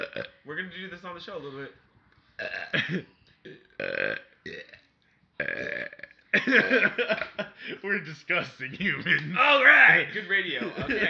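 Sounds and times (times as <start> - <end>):
person burping: 0.0 - 0.4, 2.4 - 7.3
speech: 0.2 - 4.8, 6.4 - 11.0.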